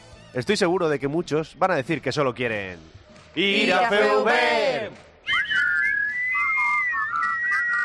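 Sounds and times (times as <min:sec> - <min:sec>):
speech: 0:00.4 - 0:05.1
person whistling badly a thin wavering tune: 0:05.2 - 0:07.8.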